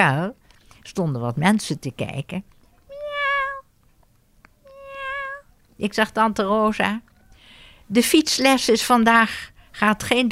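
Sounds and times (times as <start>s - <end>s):
speech: 0.0s - 2.5s, 5.8s - 7.1s, 7.9s - 10.3s
kitten meowing from inside a large pit in a forest park in Amsterdam: 2.9s - 3.6s, 4.6s - 5.4s.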